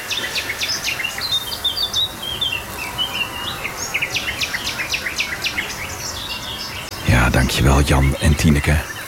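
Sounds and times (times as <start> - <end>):
garden warbler singing: 0.0 - 9.0
steady low outdoor background: 0.0 - 9.0
speech: 7.4 - 8.9.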